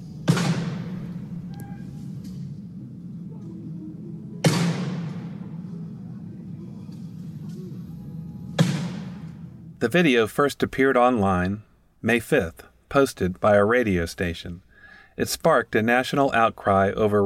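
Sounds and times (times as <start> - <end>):
steady low rumble: 0.0 - 10.0
shotgun blasts with decay: 0.2 - 2.2, 4.4 - 5.5, 8.6 - 9.3
speech: 9.8 - 17.2.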